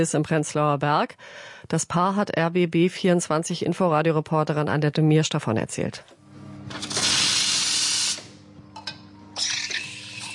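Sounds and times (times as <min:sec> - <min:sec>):
speech: 0:00.0 - 0:06.9
low mechanical hum: 0:04.9 - 0:10.3
coffee machine steam hissing during cleaning in a bookshop café: 0:06.8 - 0:08.4, 0:09.4 - 0:10.3.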